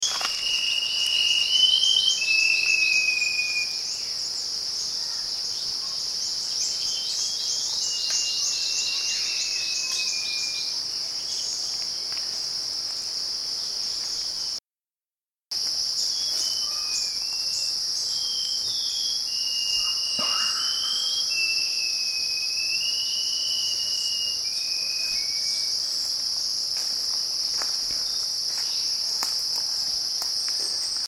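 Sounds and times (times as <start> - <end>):
Black Shama singing in Cebu: 0.0 - 11.8, 16.0 - 26.1.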